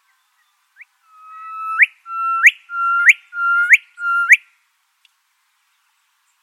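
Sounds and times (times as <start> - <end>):
Gilbert's whistler erdwit call in New South Wales: 1.0 - 4.5.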